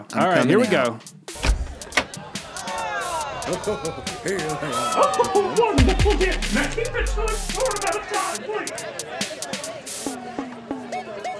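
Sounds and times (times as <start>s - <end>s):
speech: 0.0s - 1.2s, 3.5s - 9.5s
laughter: 0.0s - 11.3s
sharp clunks: 1.3s - 2.2s.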